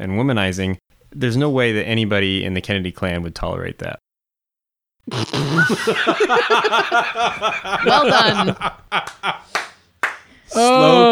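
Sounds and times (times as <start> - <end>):
speech: 0.0 - 4.0, 5.0 - 9.6, 10.5 - 11.1
laughter: 5.5 - 9.6
slow hand clapping: 7.2 - 10.4
man speaking loudly: 7.8 - 8.6, 10.5 - 11.1.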